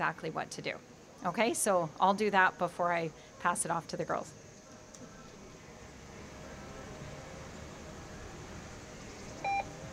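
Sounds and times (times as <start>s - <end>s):
speech: 0.0s - 4.4s
electronic alarm beep from an AED cabinet being opened: 9.4s - 9.7s.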